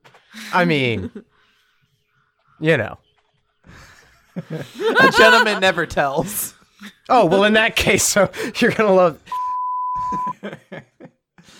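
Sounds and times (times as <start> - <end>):
speech: 0.4 - 1.3, 2.6 - 3.0, 3.7 - 9.4
laughter: 3.6 - 9.4, 10.0 - 11.3
steady electronic beep: 9.3 - 10.3.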